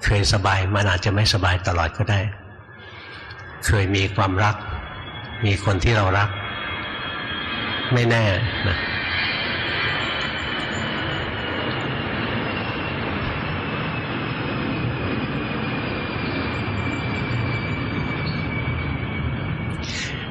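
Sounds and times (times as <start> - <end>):
speech: 0.0 - 2.4, 3.6 - 4.7, 5.4 - 6.4, 7.9 - 8.9
airplane passing overhead: 0.0 - 20.2.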